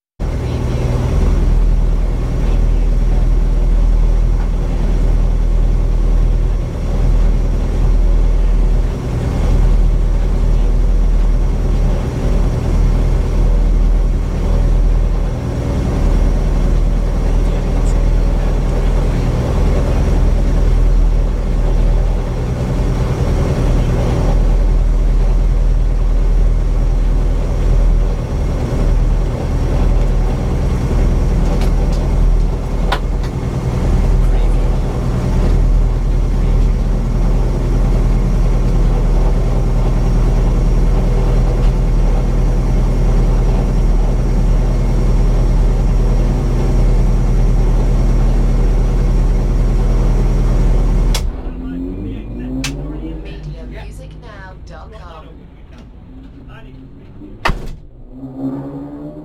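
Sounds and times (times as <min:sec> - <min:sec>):
rally car engine idling: 0:00.2 - 0:58.2
rally pit ambience: 0:00.2 - 0:59.2.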